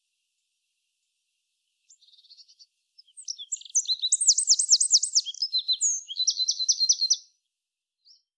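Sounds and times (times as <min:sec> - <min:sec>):
Eurasian wren Troglodytes troglodytes singing: 0:01.8 - 0:07.3, 0:08.0 - 0:08.3.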